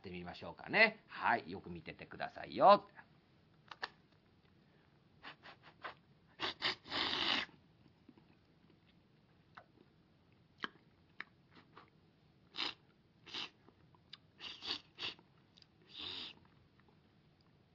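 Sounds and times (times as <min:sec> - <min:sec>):
speech: 0:00.3 - 0:03.1
performer mimicking slurping noodles with the mouth: 0:05.4 - 0:07.6, 0:12.5 - 0:13.6, 0:14.3 - 0:15.3, 0:15.9 - 0:16.5.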